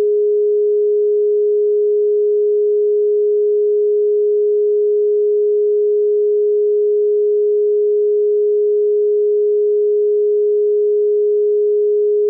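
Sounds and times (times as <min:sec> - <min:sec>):
pure 417 Hz tone: 0:00.0 - 0:12.2.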